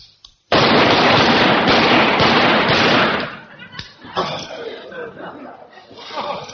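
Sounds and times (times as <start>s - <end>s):
rapid gunfire on a shooting range: 0.5s - 3.5s
laughter: 3.2s - 6.5s.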